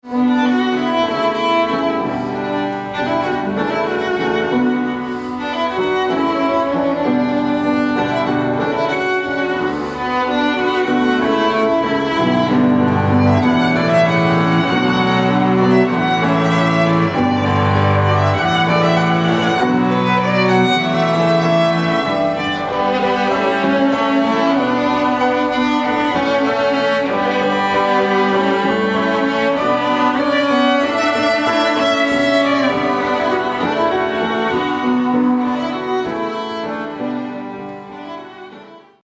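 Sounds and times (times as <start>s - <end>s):
cello: 0.0s - 39.0s
piano: 0.0s - 39.0s
violin: 0.0s - 39.0s.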